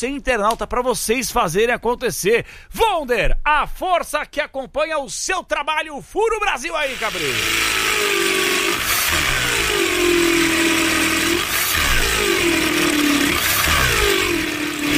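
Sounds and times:
speech: 0.0s - 8.2s
power drill motor revving: 6.7s - 14.9s.

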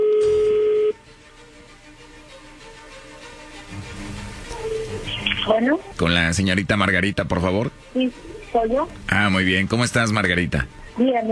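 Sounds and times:
telephone tone as a number is dialed: 0.0s - 1.0s
speech: 5.5s - 11.2s.

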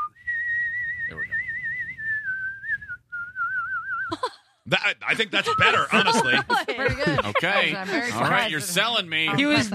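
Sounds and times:
person whistling the national anthem: 0.0s - 4.1s
speech: 1.1s - 1.4s, 4.1s - 9.7s
laughter: 4.1s - 9.7s.

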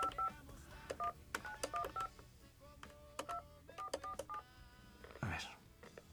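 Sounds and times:
telephone keypad dialing tones: 0.0s - 2.1s, 3.2s - 4.5s.

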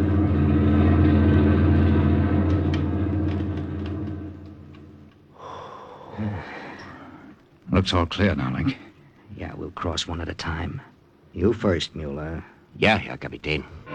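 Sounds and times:
heavy German army lorry rumbling past on a highway: 0.0s - 5.3s
speech: 7.8s - 13.9s.

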